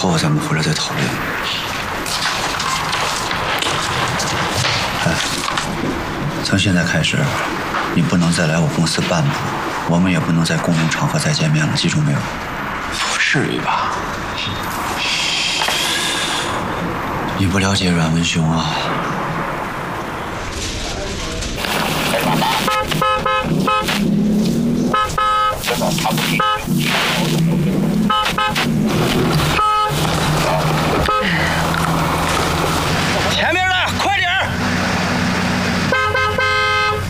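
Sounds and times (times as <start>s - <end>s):
speech: 0.0s - 1.7s, 6.4s - 12.6s, 13.3s - 14.6s, 17.4s - 19.1s
low engine rumble: 0.0s - 37.0s
car horn honking in insistent bursts: 22.3s - 24.2s, 24.8s - 26.8s, 28.0s - 28.8s, 29.4s - 30.3s, 30.9s - 31.8s, 35.9s - 37.0s.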